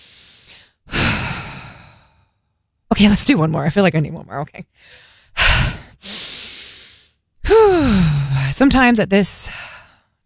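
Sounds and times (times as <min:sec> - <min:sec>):
deep breath in: 0:00.0 - 0:02.4, 0:04.8 - 0:08.6, 0:09.5 - 0:10.2
speech: 0:02.9 - 0:05.8, 0:07.8 - 0:09.8.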